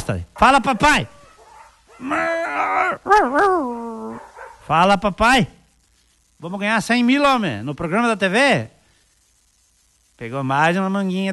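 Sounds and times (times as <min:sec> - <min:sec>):
speech: 0:00.1 - 0:01.2, 0:02.0 - 0:05.6, 0:06.4 - 0:08.8, 0:10.2 - 0:11.3
dog whimpering and howling: 0:01.3 - 0:04.4.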